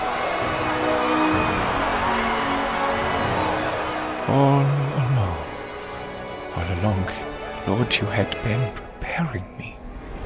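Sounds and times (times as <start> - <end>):
large crowd cheering: 0.0 - 6.0
speech: 4.3 - 4.7, 7.9 - 9.7.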